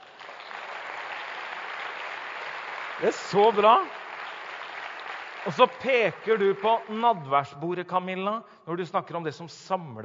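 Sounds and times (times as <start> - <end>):
audience applauding a meeting leader: 0.0 - 7.3
speech: 3.0 - 4.0, 5.4 - 10.0.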